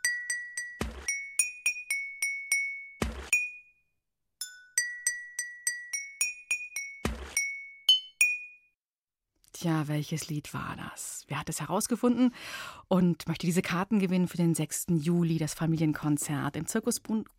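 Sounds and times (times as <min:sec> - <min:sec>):
water-filled glass bottles struck playing a melody: 0:00.0 - 0:03.7, 0:04.4 - 0:08.6
speech: 0:09.6 - 0:17.3.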